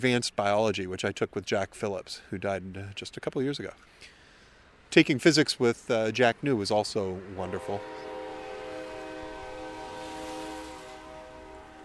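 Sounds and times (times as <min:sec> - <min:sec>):
speech: 0:00.0 - 0:04.2, 0:04.9 - 0:08.1
Norfolk Southern train whistle blowing: 0:07.4 - 0:11.8.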